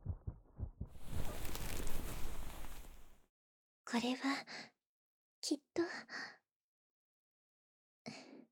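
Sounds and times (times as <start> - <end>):
fast heartbeat: 0.0 - 1.8
speech: 3.9 - 4.7, 5.4 - 6.4.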